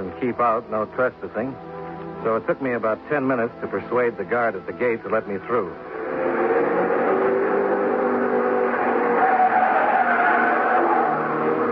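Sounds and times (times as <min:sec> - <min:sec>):
speech: 0:00.2 - 0:06.4
test cars thundering by on the track at testing grounds: 0:05.8 - 0:11.7.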